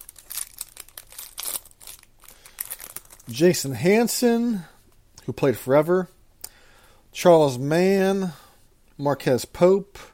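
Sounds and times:
pack of trading cards being opened, wrapper crinkling and tearing: 0.0 - 3.5
speech: 3.3 - 4.7, 5.3 - 6.2, 7.2 - 8.4, 9.0 - 10.1.

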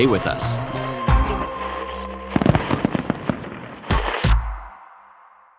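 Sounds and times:
speech: 0.0 - 0.8
fireworks exploding: 2.3 - 4.8.

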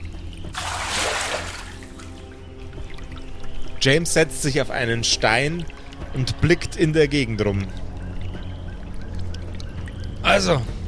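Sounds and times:
running water of a stream: 0.0 - 10.8
water scooped by hand from a stream splashed onto the face and head: 0.5 - 2.4
speech: 3.8 - 7.8, 10.4 - 10.7.

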